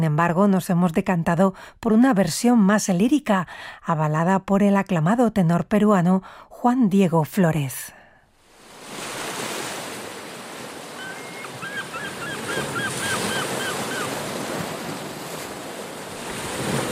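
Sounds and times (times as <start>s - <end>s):
speech: 0.0s - 8.0s
breezy windswept wash: 8.4s - 16.8s
ocean surf roaring: 8.5s - 16.8s
seagulls calling: 10.7s - 15.0s.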